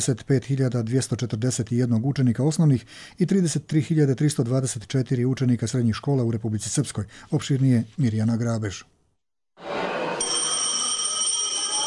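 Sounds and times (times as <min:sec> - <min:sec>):
speech: 0:00.0 - 0:08.9
school bell ringing: 0:10.2 - 0:11.8.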